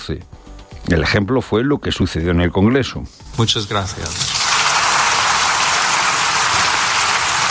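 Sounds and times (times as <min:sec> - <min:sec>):
speech: 0:00.1 - 0:04.4
parliament deputies applauding: 0:04.1 - 0:07.4.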